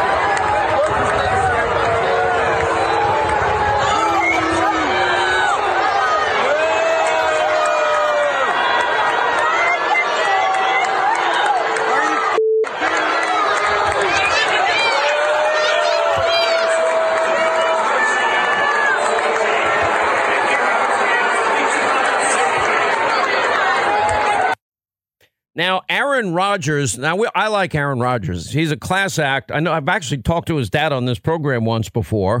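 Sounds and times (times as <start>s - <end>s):
huge stadium crowd of fans booing: 0.0s - 24.6s
speech: 26.2s - 32.3s.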